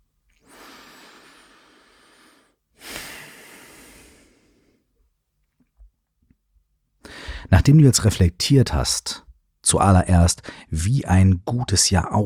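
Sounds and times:
deep breath in and out during a guided eyes-closed reflection exercise: 0:00.4 - 0:04.9, 0:07.0 - 0:07.6
speech: 0:07.5 - 0:12.2.

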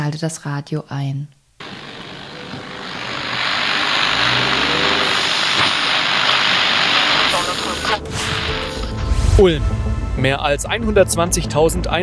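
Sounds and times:
speech: 0:00.1 - 0:01.4, 0:09.4 - 0:12.0
car engine running inside parked car: 0:01.6 - 0:09.0.

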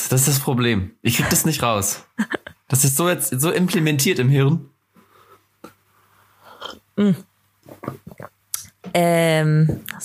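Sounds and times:
speech: 0:00.1 - 0:04.7, 0:06.6 - 0:10.0
person sipping coffee from a cup: 0:06.4 - 0:06.9, 0:07.6 - 0:08.4
gulp: 0:06.6 - 0:08.8.

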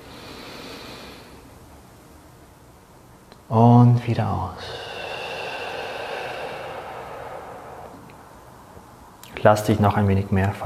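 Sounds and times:
long deep breath drawn in through the nose: 0:00.0 - 0:01.5, 0:04.6 - 0:08.3
speech: 0:03.5 - 0:04.9, 0:09.4 - 0:10.6.

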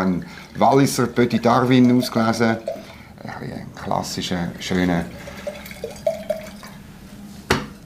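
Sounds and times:
speech: 0:00.0 - 0:05.3
white wine from the Valais glugging out of a bottle into a glass: 0:01.6 - 0:03.1, 0:05.1 - 0:06.8.

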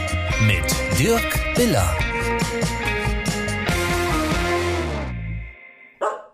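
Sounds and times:
musical backing: 0:00.0 - 0:05.5
speech: 0:00.4 - 0:02.9
dogs barking at a dog daycare: 0:06.0 - 0:06.3.

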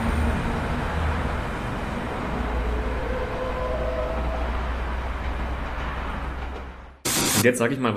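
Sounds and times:
distant heavy truck braking: 0:00.0 - 0:07.0
faint squealing tone of braking truck: 0:02.2 - 0:06.2
speech: 0:07.4 - 0:07.9.

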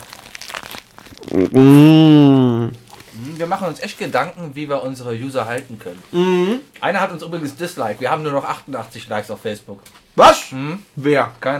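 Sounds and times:
crinkling: 0:00.0 - 0:01.6, 0:02.8 - 0:04.0
crunchy chewing of a döner kebab: 0:00.0 - 0:01.8
loud drawn-out satisfied hum at the microphone: 0:01.2 - 0:03.3, 0:06.1 - 0:06.7
speech: 0:01.4 - 0:02.8, 0:03.4 - 0:11.5.

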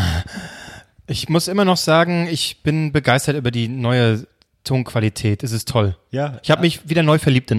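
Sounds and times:
heavy breathing: 0:00.0 - 0:01.0
speech: 0:01.1 - 0:07.5.

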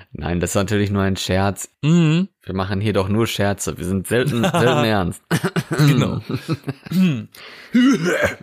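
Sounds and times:
speech: 0:00.1 - 0:08.4
voice imitating throat-clearing coughs: 0:01.8 - 0:02.3, 0:05.4 - 0:06.2, 0:06.9 - 0:08.4
laughter: 0:04.2 - 0:07.2.

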